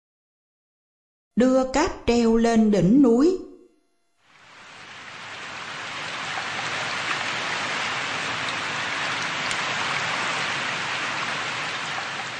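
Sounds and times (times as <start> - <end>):
speech: 1.4 - 3.5
rain pattering on a mountaintop above Tây Ninh town in southern Vietnam: 4.3 - 12.3.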